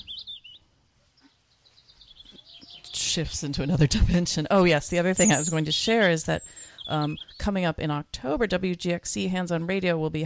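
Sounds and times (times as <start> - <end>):
faint bird chirps: 0.0 - 3.0, 5.2 - 7.4
speech: 3.1 - 10.2.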